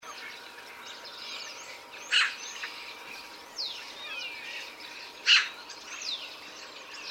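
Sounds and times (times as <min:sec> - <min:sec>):
other birds giving thin whistles and sweeping notes: 0:00.0 - 0:07.0
Eurasian magpie Pica pica harsh rasping calls: 0:02.0 - 0:02.7, 0:05.2 - 0:05.6.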